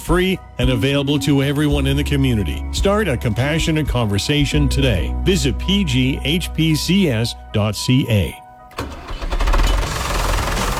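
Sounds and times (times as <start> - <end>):
speech: 0.1 - 9.0
tractor engine cranking, starting and running: 8.7 - 10.7.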